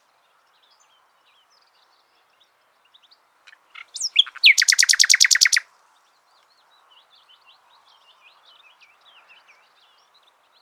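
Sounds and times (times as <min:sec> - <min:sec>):
Common nightingale Luscinia megarhynchos singing: 0:03.5 - 0:05.7.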